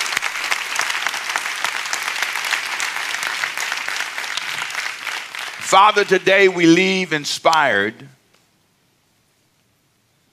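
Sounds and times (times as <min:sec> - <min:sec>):
large crowd applauding: 0:00.0 - 0:07.1
speech: 0:05.7 - 0:08.2.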